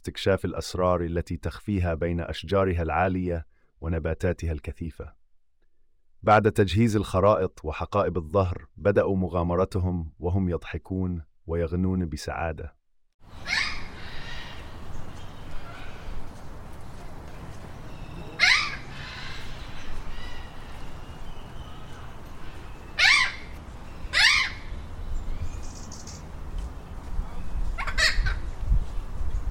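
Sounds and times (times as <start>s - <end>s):
speech: 0.0s - 5.2s, 6.2s - 13.7s
tropical forest birds calling: 13.2s - 29.4s.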